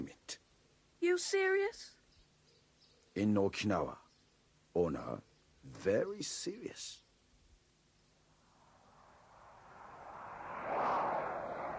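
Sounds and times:
speech: 0.0s - 0.4s, 1.0s - 2.0s, 3.2s - 4.0s, 4.8s - 7.0s
airplane cabin engine drone: 8.4s - 11.7s.

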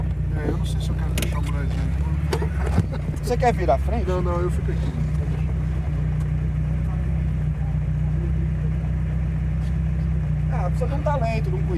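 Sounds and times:
car engine accelerating: 0.0s - 11.7s
speech: 0.6s - 5.1s, 10.7s - 11.7s
laughter: 1.3s - 6.0s.

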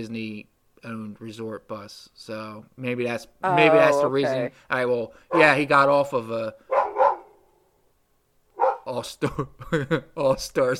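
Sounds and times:
speech: 0.0s - 6.7s, 8.9s - 10.7s
dog barking: 6.7s - 7.4s, 8.6s - 8.9s.

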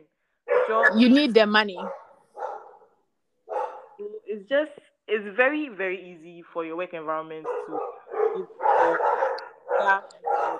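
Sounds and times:
dogs barking: 0.4s - 1.1s, 1.7s - 4.0s, 7.4s - 10.5s
speech: 0.7s - 2.0s, 4.4s - 9.2s, 9.8s - 10.5s.

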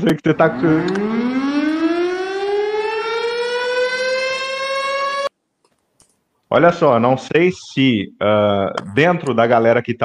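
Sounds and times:
speech: 0.0s - 1.2s, 6.5s - 10.0s
siren wailing with rising pitch: 0.1s - 5.3s.

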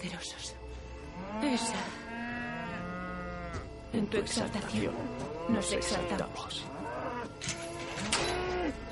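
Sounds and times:
speech: 0.0s - 0.6s, 1.2s - 2.2s, 3.9s - 7.6s
cattle lowing inside a barn: 1.1s - 3.7s, 4.7s - 8.8s.

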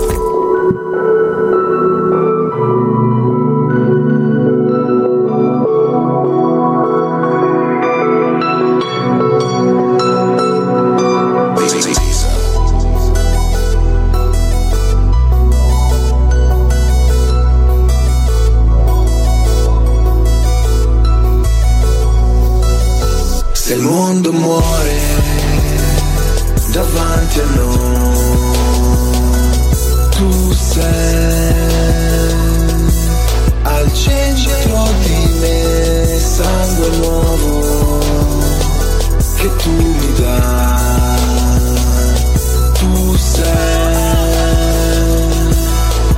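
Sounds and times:
heavy bass and punchy drum beat: 0.0s - 0.4s, 11.6s - 23.7s, 24.4s - 46.1s
Italian rap song playing loudly: 0.0s - 5.9s, 6.5s - 46.1s
sustained melodic synth chords: 0.0s - 46.1s.

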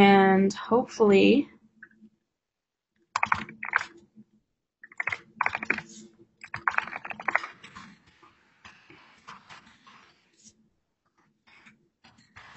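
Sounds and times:
speech: 0.0s - 1.5s
typing on a computer keyboard: 3.2s - 3.9s, 4.8s - 7.8s.

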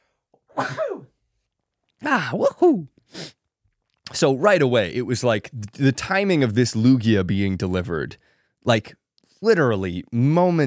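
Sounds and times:
person sneezing: 0.5s - 1.2s
speech: 0.6s - 1.2s, 2.0s - 3.4s, 4.1s - 10.6s.

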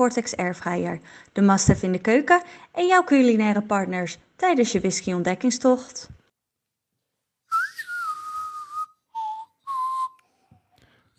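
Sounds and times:
speech: 0.0s - 6.2s
person whistling a spaghetti-western film theme: 7.5s - 10.7s.

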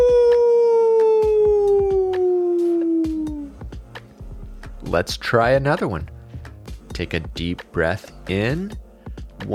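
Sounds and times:
person imitating a long sliding wolf howl: 0.0s - 3.6s
speech: 4.9s - 6.2s, 7.0s - 8.8s.

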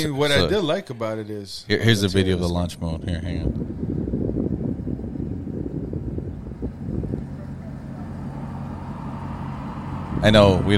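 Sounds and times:
speech: 0.0s - 4.2s, 10.2s - 10.7s
wind noise: 3.0s - 8.8s, 9.8s - 10.7s
pickup truck engine roaring during a burnout: 3.5s - 10.7s.

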